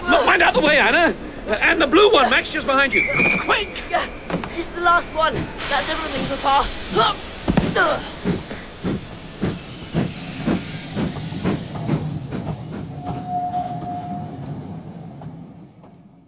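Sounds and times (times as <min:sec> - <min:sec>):
German steam train hissing at a station: 0:00.1 - 0:14.8
speech: 0:00.4 - 0:08.2
whistle-like tone: 0:02.9 - 0:03.8, 0:13.0 - 0:14.4.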